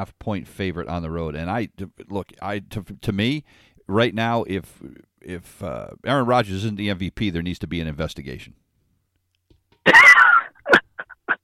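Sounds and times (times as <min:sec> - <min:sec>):
speech: 0:00.0 - 0:08.6
person sneezing: 0:09.9 - 0:11.4.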